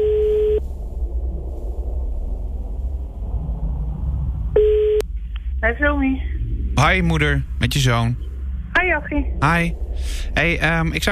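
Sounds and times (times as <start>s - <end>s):
telephone call tone while dialing: 0.0s - 0.6s, 4.6s - 5.0s
quiet telephone line hum: 0.0s - 11.1s
speech: 5.7s - 11.1s.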